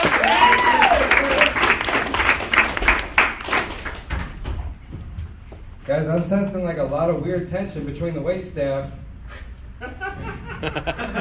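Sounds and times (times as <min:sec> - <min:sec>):
people whooping and cheering: 0:00.0 - 0:01.9
audience applause for a comedian: 0:00.0 - 0:04.1
speech: 0:06.1 - 0:09.0, 0:10.6 - 0:11.1
laughter: 0:09.8 - 0:11.1.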